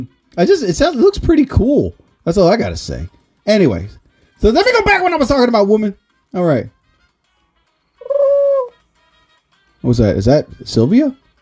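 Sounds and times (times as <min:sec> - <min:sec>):
speech: 0:00.0 - 0:06.8, 0:09.8 - 0:11.2
pigeon coo sound effect from a soundboard: 0:08.0 - 0:08.8.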